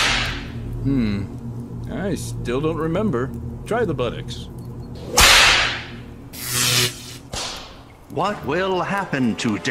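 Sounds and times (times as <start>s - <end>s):
whip crack: 0.0s - 0.4s, 5.2s - 5.9s, 6.6s - 7.8s
steady low hum: 0.0s - 9.6s
speech: 0.8s - 5.3s, 8.2s - 9.6s.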